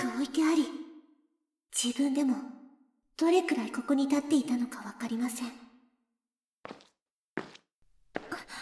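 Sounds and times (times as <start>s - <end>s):
speech: 1.8s - 2.6s, 3.2s - 5.7s
woman's footsteps on a hard surface: 6.6s - 8.5s.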